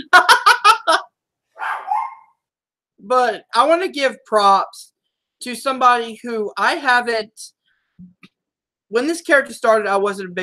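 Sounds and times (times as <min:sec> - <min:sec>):
laughter: 0:00.0 - 0:01.0
tiny dog yappy barking and bark-whimper: 0:01.6 - 0:02.3
speech: 0:03.1 - 0:08.2, 0:08.9 - 0:10.4.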